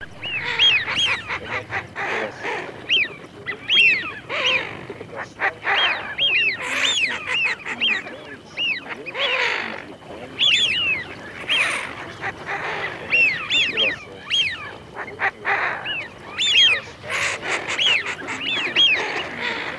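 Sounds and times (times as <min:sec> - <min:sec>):
Eurasian wigeon flock whistling: 0:00.0 - 0:19.7.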